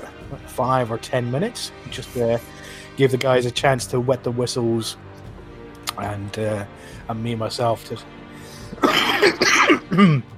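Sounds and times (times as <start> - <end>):
speech: 0.3 - 5.1, 6.0 - 10.3
loud rasping coughs from a person with a nasty cough: 8.7 - 10.3.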